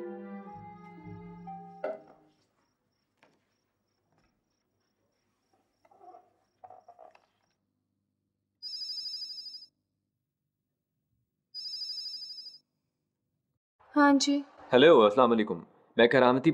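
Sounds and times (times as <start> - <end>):
telephone ringing with an electronic trill: 8.6 - 9.7, 11.6 - 12.6
speech: 14.0 - 16.5.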